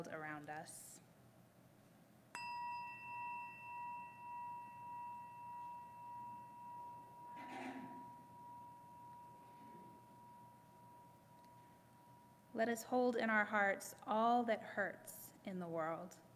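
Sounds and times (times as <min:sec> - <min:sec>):
speech: 0:00.0 - 0:01.1, 0:12.6 - 0:16.3
meditation chime ringing: 0:02.3 - 0:12.5.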